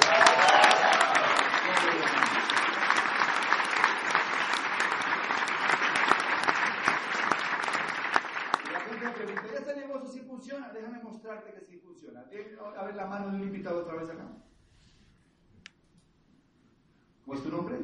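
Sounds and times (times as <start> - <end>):
scattered cheers: 0.0 - 9.4
large audience clapping: 0.0 - 9.7
speech: 17.3 - 17.8.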